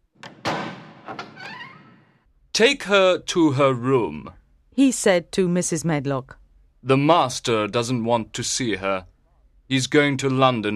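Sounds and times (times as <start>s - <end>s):
heavy wooden door creaking as it swings open: 0.1s - 2.3s
latch clunks of a heavy wooden door: 0.2s - 2.0s
heavy wooden door thud: 0.2s - 2.1s
speech: 1.1s - 1.6s, 2.6s - 9.1s, 9.7s - 10.7s.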